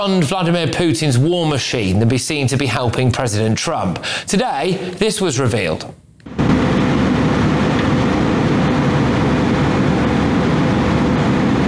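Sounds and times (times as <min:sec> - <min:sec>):
speech: 0:00.0 - 0:06.0
jet engine roar: 0:06.3 - 0:11.6.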